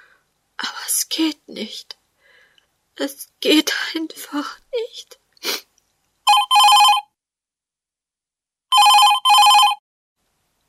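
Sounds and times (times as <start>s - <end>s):
speech: 1.1s - 2.0s, 3.0s - 5.6s
telephone ringing with quick electronic trills: 6.3s - 7.1s, 8.7s - 9.8s.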